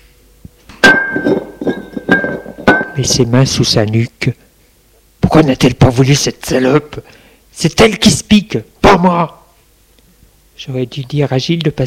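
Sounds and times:
glass beer bottle set down on the floor: 0:00.8 - 0:03.0
speech: 0:03.0 - 0:04.4, 0:05.3 - 0:09.4, 0:10.6 - 0:11.8.

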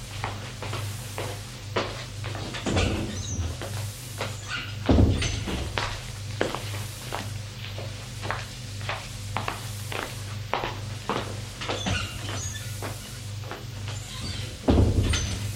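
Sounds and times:
shuffling footsteps: 0:00.0 - 0:04.4, 0:05.5 - 0:14.6
knocks and thuds of a woman tidying a bedroom: 0:14.6 - 0:15.4.

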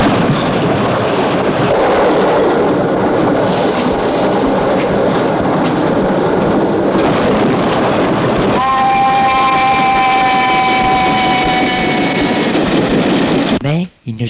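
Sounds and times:
train rushing past with a roar and rattle: 0:00.0 - 0:13.8
shrill sustained tone: 0:08.6 - 0:12.5.

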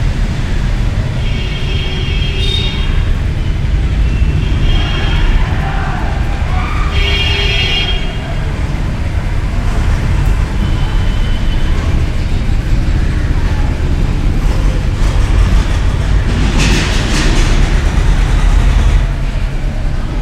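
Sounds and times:
heavy traffic rumbling at an intersection heard from inside a temple: 0:00.0 - 0:20.2
short bright vehicle horns: 0:01.1 - 0:08.7, 0:10.4 - 0:12.2.

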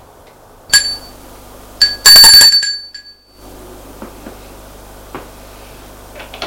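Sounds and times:
doorbell at a door ringing: 0:00.7 - 0:01.2, 0:01.8 - 0:03.4.

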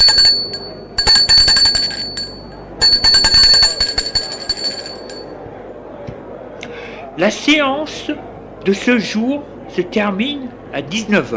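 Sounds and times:
small metallic bell rung to close a formal session: 0:00.0 - 0:05.3
speech: 0:07.2 - 0:11.3.

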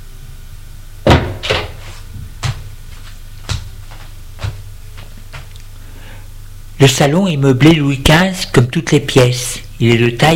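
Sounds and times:
door closing with a solid thud in a small sitting room: 0:01.0 - 0:02.3
speech: 0:06.8 - 0:10.3.

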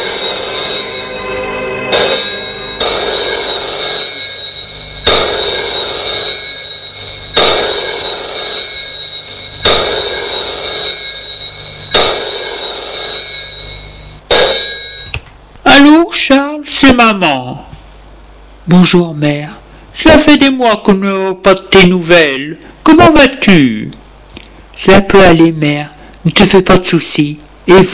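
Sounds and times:
steady bright electronic tone: 0:00.0 - 0:15.2
telephone ringing: 0:00.0 - 0:15.2
speech: 0:17.0 - 0:17.7, 0:18.7 - 0:24.0, 0:24.8 - 0:27.9.

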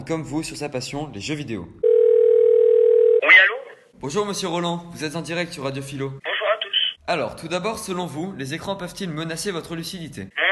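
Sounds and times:
speech: 0:00.0 - 0:01.8, 0:04.0 - 0:06.3, 0:07.1 - 0:10.4
telephone ringing tone: 0:01.8 - 0:03.2.

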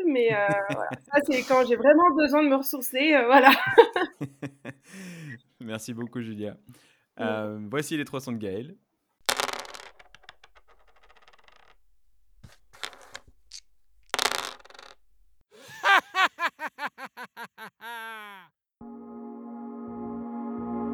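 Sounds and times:
laughter: 0:00.1 - 0:02.0, 0:03.4 - 0:05.3, 0:15.6 - 0:18.5
speech: 0:00.2 - 0:05.0, 0:05.6 - 0:08.8
dice rattling and clattering across a hard surface: 0:09.3 - 0:15.3.

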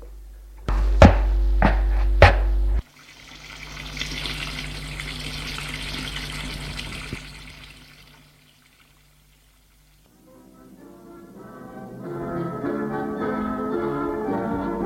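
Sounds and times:
low humming drone: 0:00.0 - 0:14.7
sharp knocks: 0:00.7 - 0:02.8
kitchen tap water running into the sink: 0:02.8 - 0:10.1.

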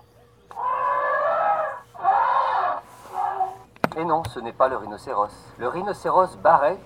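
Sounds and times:
elephant trumpeting: 0:00.5 - 0:03.7
speech: 0:04.0 - 0:06.8.

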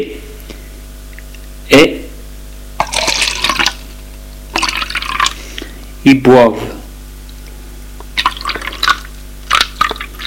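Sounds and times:
liquid pouring from a just-opened bottle: 0:02.8 - 0:03.9, 0:04.5 - 0:05.4, 0:08.1 - 0:10.2
speech: 0:06.0 - 0:06.8.

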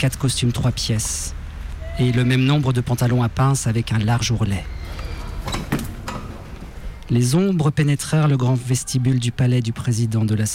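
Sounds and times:
speech: 0:00.0 - 0:01.4, 0:02.0 - 0:04.8, 0:07.1 - 0:10.5
doors slamming in a palace vestibule: 0:04.7 - 0:07.0
floorboards creaking in a palace vestibule: 0:04.7 - 0:07.0.

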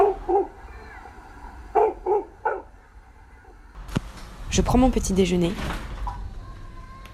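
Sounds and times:
dog barking in an apartment in Brazil: 0:00.0 - 0:00.9, 0:01.7 - 0:02.8
speech: 0:04.6 - 0:05.9.

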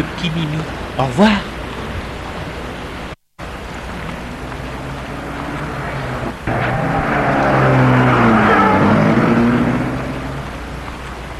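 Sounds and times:
speech: 0:00.0 - 0:01.5
car engine starting, revving and pulling away: 0:03.4 - 0:11.3.

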